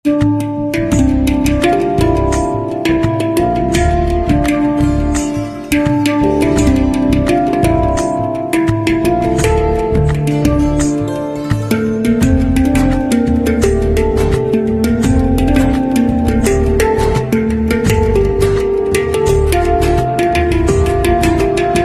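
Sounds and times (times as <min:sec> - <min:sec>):
handpan instrumental ringtone: 0:00.1 - 0:21.8.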